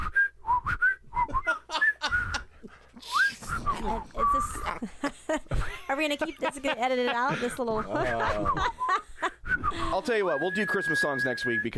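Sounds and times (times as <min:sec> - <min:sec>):
person whistling a quick warbling tune: 0:00.0 - 0:02.4, 0:03.0 - 0:04.7, 0:08.4 - 0:11.7
laughter: 0:01.3 - 0:03.1, 0:03.8 - 0:10.0
speech: 0:06.0 - 0:08.8, 0:09.9 - 0:11.7.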